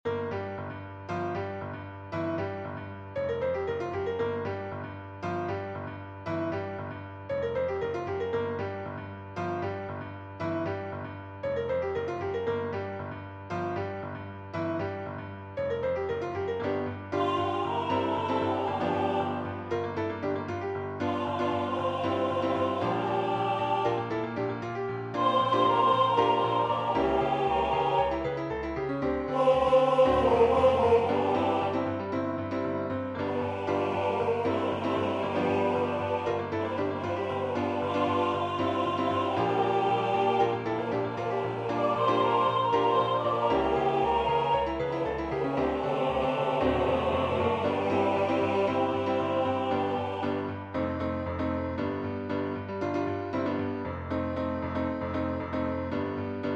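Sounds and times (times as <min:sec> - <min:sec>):
MIDI piano: 0:00.0 - 0:56.5
MIDI choir singing: 0:16.5 - 0:51.7.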